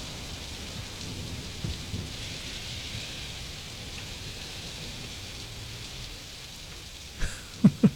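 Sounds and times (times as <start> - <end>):
low thunder rumbles: 0.0 - 5.9
steady rain hissing: 0.0 - 7.9.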